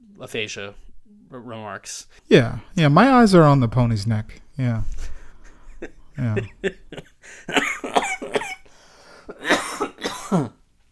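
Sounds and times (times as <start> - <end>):
speech: 0.2 - 5.2, 5.8 - 8.0, 10.3 - 10.6
laughter: 5.0 - 8.0
harsh hacking coughs: 5.8 - 10.6.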